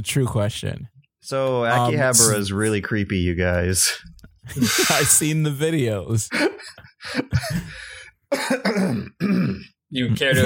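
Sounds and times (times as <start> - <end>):
speech: 0.0 - 10.4
laughter: 4.4 - 5.5, 6.1 - 7.8
person clearing throat: 8.3 - 10.4.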